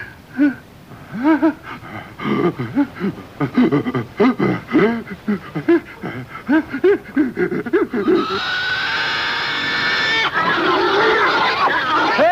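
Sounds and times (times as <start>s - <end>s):
laughter: 0.4s - 12.2s
crowd of pigs squealing and grunting: 7.9s - 12.2s.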